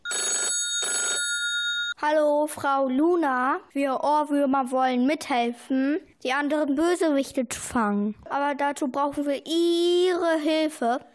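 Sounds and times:
telephone ringing with an electronic trill: 0.0 - 2.0
speech: 2.0 - 11.1.

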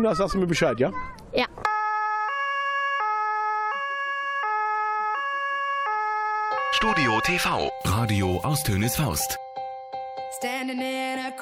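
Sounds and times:
speech: 0.0 - 1.7, 6.8 - 9.4, 10.4 - 11.4
fire engine siren wailing in a two-tone pattern: 1.7 - 7.8.

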